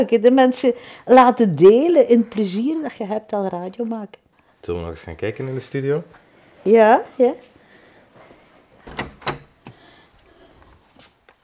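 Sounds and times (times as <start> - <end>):
speech: 0.0 - 7.5
studio door opening with clunks and creaky scrape: 8.8 - 9.8.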